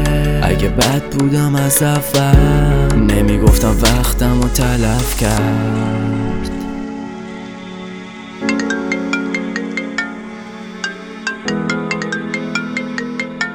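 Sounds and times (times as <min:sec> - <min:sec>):
speech: 0:00.7 - 0:06.2
phone ringtone with electronic chiming notes: 0:08.4 - 0:13.5.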